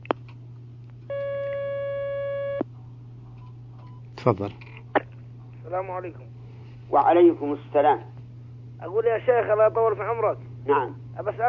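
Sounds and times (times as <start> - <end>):
constant low hum: 0.0 - 11.4
telephone line tone as a caller is connected: 1.1 - 2.6
speech: 4.2 - 4.6, 5.7 - 8.1, 8.8 - 11.4.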